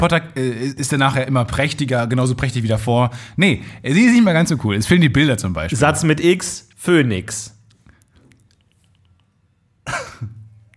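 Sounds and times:
speech: 0.0 - 7.6
deliberate dry cough after a bad joke: 9.8 - 10.5.

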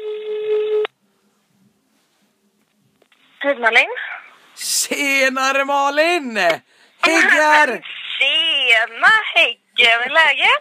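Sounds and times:
telephone tone as a call is placed: 0.0 - 0.9
speech: 3.4 - 10.5.

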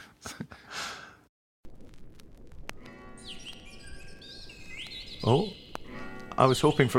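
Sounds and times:
birdsong: 2.8 - 6.9
speech: 5.2 - 5.6, 6.4 - 6.9.

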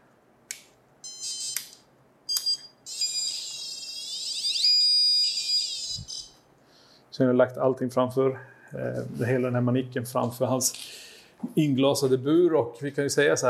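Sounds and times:
REM pod ghost detector beeping in short bursts: 2.3 - 6.4
REM pod ghost detector loud warbling whine: 3.1 - 6.4
speech: 7.2 - 10.9, 11.6 - 13.4.

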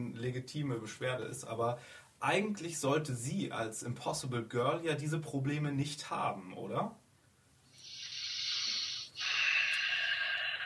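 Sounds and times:
speech: 0.0 - 7.0
deep breath: 1.8 - 2.2, 7.7 - 10.6.

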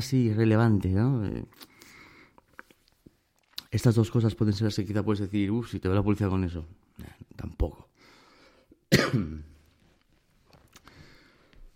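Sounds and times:
speech: 0.0 - 1.7, 3.7 - 7.9, 8.9 - 9.5
man with a cold coughing: 8.9 - 9.6
faint shuffling: 9.5 - 11.7.

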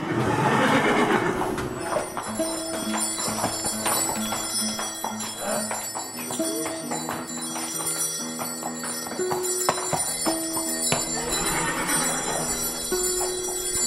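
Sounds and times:
draft horses whinnying while being harnessed: 0.0 - 2.6, 5.3 - 5.8, 11.1 - 13.3
bell-like jingling of harnessed draft horse team: 1.4 - 13.8.

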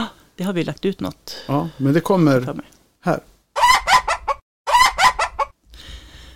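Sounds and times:
speech: 0.4 - 3.3
Sultan rooster crowing like laughter: 3.6 - 5.5.

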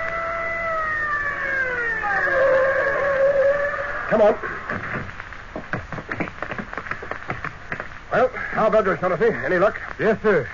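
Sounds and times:
car siren winding down: 0.0 - 4.2
speech: 4.1 - 5.1, 8.2 - 10.5.

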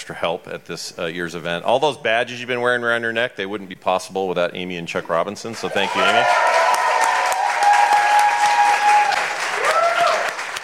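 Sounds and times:
speech: 0.0 - 6.6
audience clapping: 5.5 - 10.6.

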